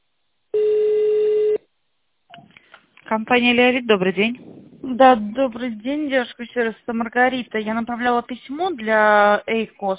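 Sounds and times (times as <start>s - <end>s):
telephone ringback tone during call transfer: 0.6s - 1.6s
speech: 3.1s - 9.9s.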